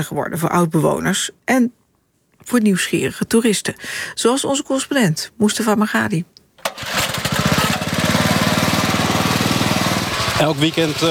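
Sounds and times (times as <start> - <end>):
speech: 0.0 - 1.8, 2.4 - 6.9, 10.4 - 11.0
small bamboo raft boat motor sputtering and chugging: 6.7 - 11.0.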